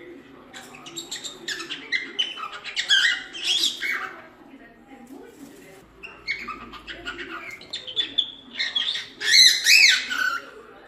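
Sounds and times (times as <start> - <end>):
lutino cockatiel chattering and squawking: 0.6 - 4.2, 6.1 - 10.4.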